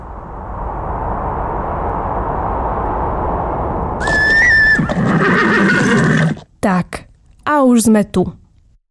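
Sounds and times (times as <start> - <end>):
steady rushing wind-like noise: 0.0 - 5.8
horse whinnying on a snowy hill at a ranch in Sásovská valley: 4.0 - 6.5
speech: 6.6 - 6.9, 7.7 - 8.4.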